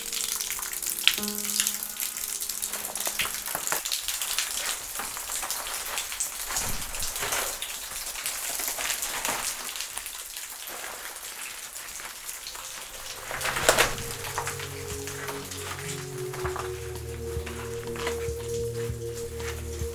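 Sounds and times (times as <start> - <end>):
underground water dripping in the Pyrenees: 0.0 - 19.9
faint low tones: 13.0 - 19.9.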